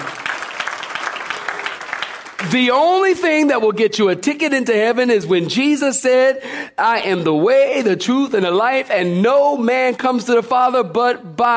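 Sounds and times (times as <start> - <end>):
audience clapping hands: 0.0 - 3.2
speech: 2.4 - 11.5.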